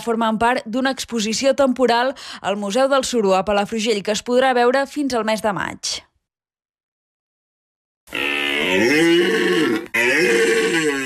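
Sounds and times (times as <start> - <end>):
speech: 0.0 - 6.1, 8.1 - 9.2
deer stag bellowing during the autumn rut in the Pyrenees: 8.1 - 11.0.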